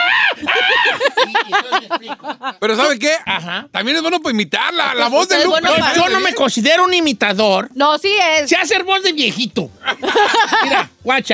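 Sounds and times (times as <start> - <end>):
man imitating a cumbia band's signature shout: 0.0 - 1.8, 4.8 - 6.5
laughter: 0.0 - 3.7, 9.8 - 11.0
speech: 1.7 - 11.3.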